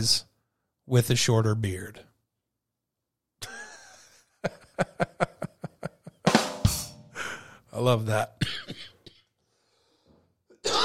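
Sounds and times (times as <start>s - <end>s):
speech: 0.0s - 0.3s, 0.9s - 2.1s, 4.4s - 5.2s, 7.8s - 8.9s
laughter: 3.4s - 6.4s
faint breathing: 7.0s - 7.7s, 9.4s - 10.4s
dry harsh cough from a dry throat: 8.4s - 9.4s, 10.5s - 10.8s.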